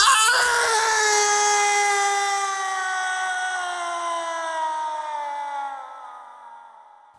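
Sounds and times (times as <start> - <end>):
person screaming: 0.0 - 6.9.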